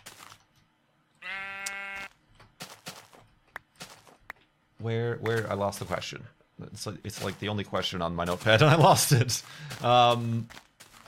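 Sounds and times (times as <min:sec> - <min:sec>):
sheep bleating: 0:01.2 - 0:02.2
speech: 0:04.8 - 0:11.0.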